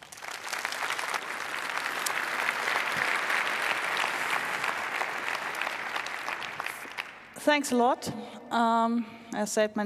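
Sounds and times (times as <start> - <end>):
audience applause: 0.0 - 7.4
speech: 7.4 - 9.8.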